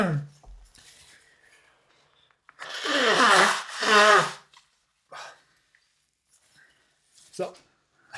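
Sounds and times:
nose blowing: 0:02.6 - 0:04.5
sniffles: 0:02.6 - 0:04.5
speech: 0:07.4 - 0:07.6.

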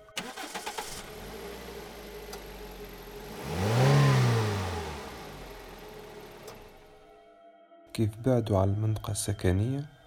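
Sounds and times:
car engine cranking, starting and idling: 0:00.0 - 0:07.0
speech: 0:08.0 - 0:10.0.

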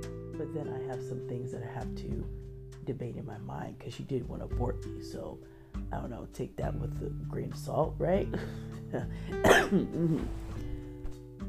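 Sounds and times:
speech: 0:00.4 - 0:10.4
person coughing and hacking after choking: 0:09.4 - 0:10.3.

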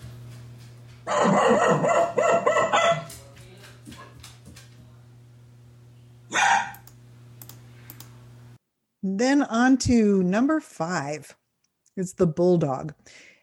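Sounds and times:
steady low electrical hum: 0:00.0 - 0:13.4
speech: 0:01.0 - 0:02.0, 0:09.7 - 0:11.4, 0:12.0 - 0:13.3
poodle barking short yappy barks: 0:01.1 - 0:03.1, 0:06.3 - 0:06.8.

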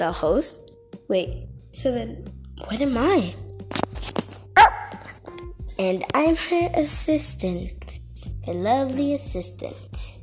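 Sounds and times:
speech: 0:00.0 - 0:03.4, 0:05.8 - 0:10.1
dog barking: 0:04.6 - 0:05.1
dog snuffling: 0:04.6 - 0:05.2.

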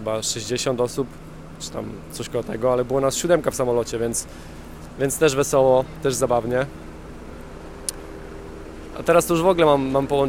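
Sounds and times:
speech: 0:00.0 - 0:06.8, 0:09.0 - 0:10.2
helicopter flying overhead: 0:00.0 - 0:10.2
sharp click: 0:07.8 - 0:08.0.

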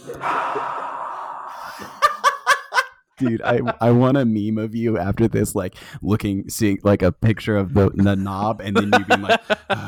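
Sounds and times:
exaggerated long breathy exhale: 0:00.0 - 0:02.0
laughter: 0:01.7 - 0:04.0, 0:08.0 - 0:09.8
speech: 0:03.2 - 0:09.8.

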